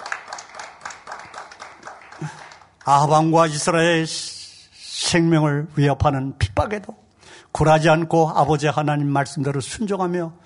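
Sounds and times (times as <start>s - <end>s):
audience applauding: 0.0s - 3.1s
speech: 2.2s - 4.3s, 5.1s - 7.0s, 7.6s - 10.4s.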